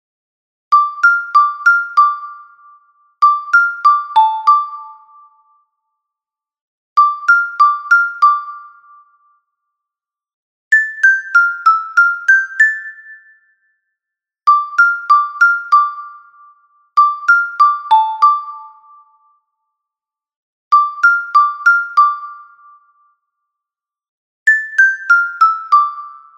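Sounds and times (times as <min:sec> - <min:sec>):
soprano xylophone: 0:00.7 - 0:05.4, 0:07.0 - 0:09.0, 0:10.7 - 0:13.4, 0:14.5 - 0:16.4, 0:17.0 - 0:19.1, 0:20.7 - 0:22.8, 0:24.5 - 0:26.3.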